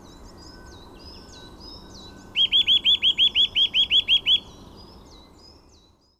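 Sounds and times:
Eurasian nuthatch Sitta europaea upward-swept whistles: 0:02.3 - 0:04.5.

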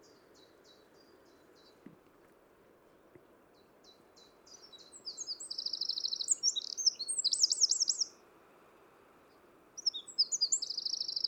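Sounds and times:
low steady background hiss: 0:00.0 - 0:11.2
Eurasian wren Troglodytes troglodytes singing: 0:03.8 - 0:08.1, 0:09.8 - 0:11.2.

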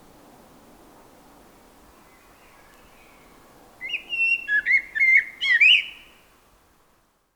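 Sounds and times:
common blackbird Turdus merula singing: 0:03.8 - 0:06.1.

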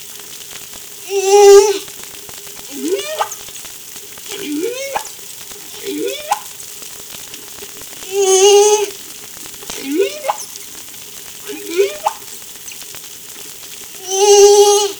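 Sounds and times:
faint hiss: 0:00.0 - 0:14.9
whale calls: 0:01.0 - 0:01.9, 0:02.6 - 0:03.6, 0:04.2 - 0:06.6, 0:07.3 - 0:14.9.

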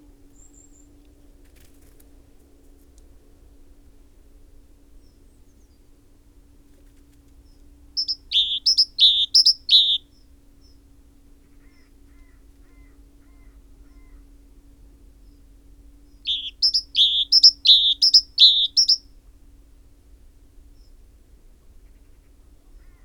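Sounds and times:
faint steady hum: 0:00.0 - 0:23.0
great tit Parus major calling paired notes: 0:08.0 - 0:10.0, 0:16.2 - 0:19.0.

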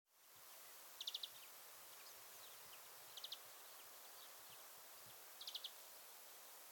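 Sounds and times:
steady hiss of background noise: 0:00.1 - 0:06.6
European greenfinch Chloris chloris calling: 0:01.0 - 0:04.3, 0:05.4 - 0:05.8.

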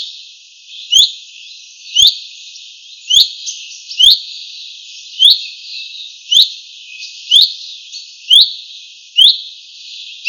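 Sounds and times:
common chaffinch Fringilla coelebs calling: 0:00.7 - 0:02.2, 0:03.0 - 0:04.4, 0:05.0 - 0:08.6, 0:09.2 - 0:10.2.

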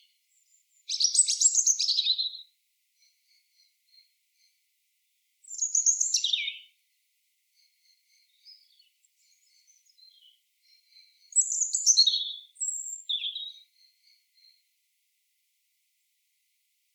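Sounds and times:
European robin singing: 0:00.0 - 0:04.6, 0:05.4 - 0:06.8, 0:07.6 - 0:14.6.

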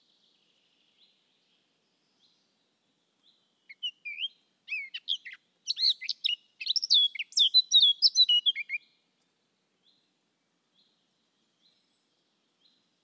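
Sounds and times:
Eurasian blackcap Sylvia atricapilla singing a scratchy warble: 0:03.2 - 0:08.9.

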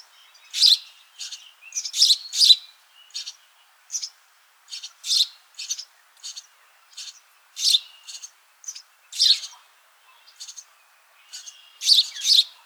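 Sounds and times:
house sparrow Passer domesticus chirping: 0:00.3 - 0:12.6.

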